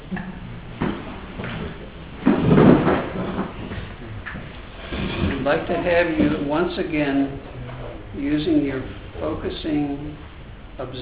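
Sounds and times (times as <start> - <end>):
chairs being turned around and dragged on the floor: 0.8 - 6.5
speech: 5.5 - 7.5, 8.2 - 10.9.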